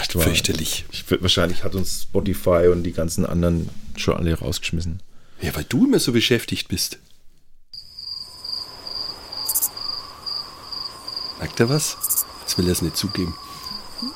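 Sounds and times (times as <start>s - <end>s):
speech: 0.1s - 7.1s, 11.4s - 14.1s
high-pitched cricket chirping: 7.8s - 14.1s.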